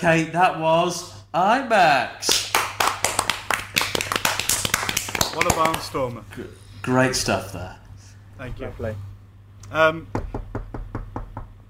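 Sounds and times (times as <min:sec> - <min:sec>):
speech: 0:00.0 - 0:02.4, 0:05.4 - 0:07.8, 0:08.4 - 0:09.1, 0:09.7 - 0:10.3
faint steady hum: 0:00.0 - 0:11.6
knocking on a door: 0:10.1 - 0:11.6.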